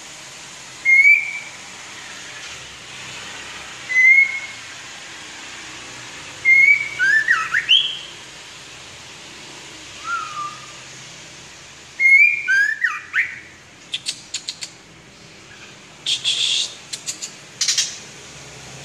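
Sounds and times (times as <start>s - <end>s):
white-rumped shama whistling: 0.8s - 1.6s, 3.9s - 4.6s, 6.4s - 8.2s, 10.0s - 10.8s, 12.0s - 13.5s, 16.1s - 16.8s.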